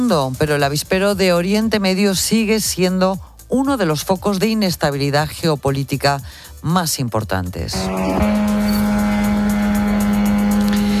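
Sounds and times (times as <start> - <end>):
speech: 0.0 - 8.4
military attack drone engine buzzing overhead: 7.7 - 10.9.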